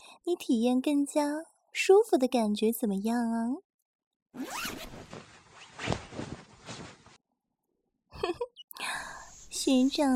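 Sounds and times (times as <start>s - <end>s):
speech: 0.2s - 3.7s, 4.4s - 4.9s, 8.2s - 8.5s, 9.6s - 10.1s
trouser zipper being unzipped: 4.4s - 7.0s.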